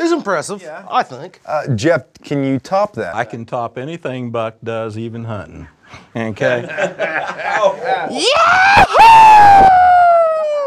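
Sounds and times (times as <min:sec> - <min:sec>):
speech: 0:00.1 - 0:10.0
laughter: 0:06.5 - 0:08.8
man imitating a yahoo scream: 0:07.9 - 0:10.6.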